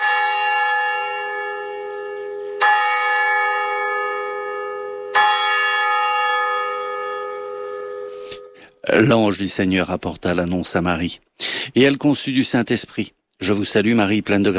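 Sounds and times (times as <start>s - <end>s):
church bell in a bell tower ringing: 0.0s - 8.8s
speech: 9.0s - 14.5s.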